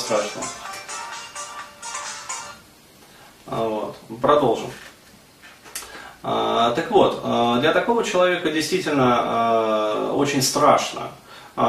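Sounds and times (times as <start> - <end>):
mobile phone ringtone in bright pulsing bursts: 0.0 - 2.6
speech: 0.1 - 0.7, 3.4 - 4.9, 6.2 - 11.6.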